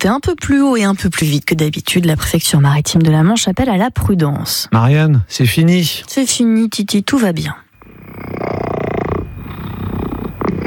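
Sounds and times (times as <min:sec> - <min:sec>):
speech: 0:00.0 - 0:08.7
breathy noise: 0:07.8 - 0:10.6
two-year-old cat stuck in a tree giving a purring growl: 0:07.8 - 0:10.6.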